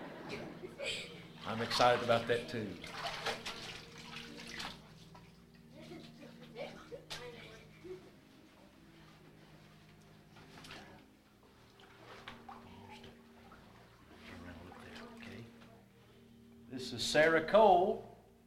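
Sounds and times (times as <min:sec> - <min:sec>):
laughter: 0:00.0 - 0:01.4
speech: 0:00.3 - 0:03.1, 0:17.1 - 0:18.1
water sloshing and splashing in a warm baptismal pool during a baptism: 0:01.4 - 0:05.4, 0:10.5 - 0:15.6.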